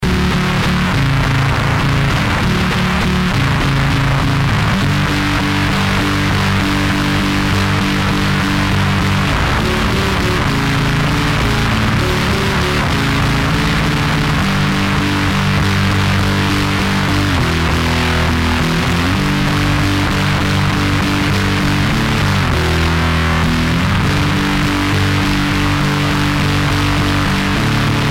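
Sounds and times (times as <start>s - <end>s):
Fender bass: 0.0s - 28.1s.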